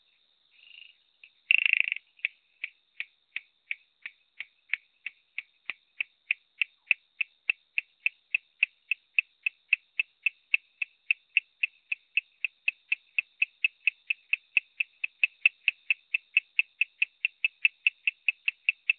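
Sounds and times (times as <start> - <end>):
Coorg yellow bush frog Raorchestes luteolus calling: 0.5 - 18.9.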